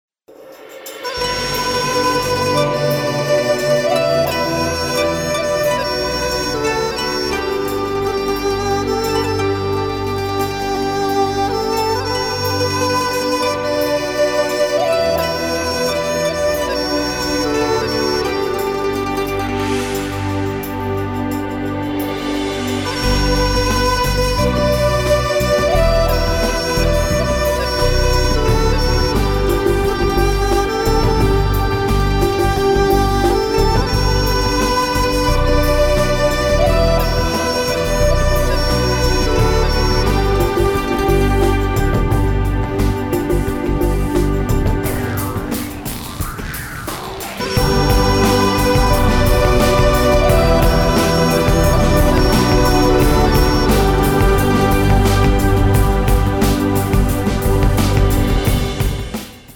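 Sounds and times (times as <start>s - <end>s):
Asian contemporary music: 1.1s - 46.0s, 47.4s - 59.2s.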